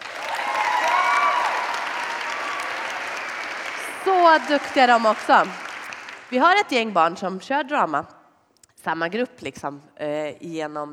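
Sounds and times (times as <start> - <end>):
audience cheers and whoops: 0.0 - 4.8
audience applause: 0.0 - 6.5
speech: 4.0 - 5.6, 6.3 - 8.2, 8.8 - 10.9.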